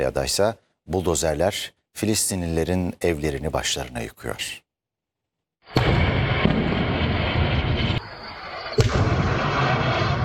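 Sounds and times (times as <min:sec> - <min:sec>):
speech: 0:00.0 - 0:04.6
sharp explosion blasts from strikes in Gaza: 0:05.7 - 0:10.2.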